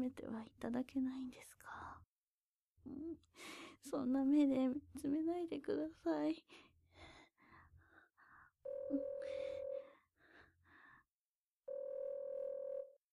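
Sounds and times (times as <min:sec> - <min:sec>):
speech: 0:00.0 - 0:02.1, 0:02.8 - 0:07.2, 0:08.7 - 0:09.7
telephone ringing with a steady electronic tone: 0:08.7 - 0:09.8, 0:11.7 - 0:13.0.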